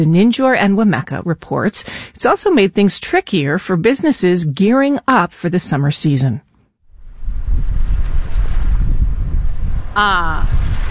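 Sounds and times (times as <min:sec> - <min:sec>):
speech: 0:00.0 - 0:06.5, 0:10.0 - 0:10.8
gusts of wind buffeting the microphone: 0:06.9 - 0:10.8
ocean waves breaking on Cape Cod in summer: 0:07.2 - 0:10.8.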